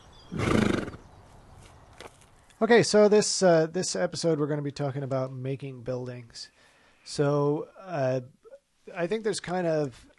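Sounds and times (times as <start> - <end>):
horse whinnying: 0.3 - 1.0
speech: 2.6 - 10.1.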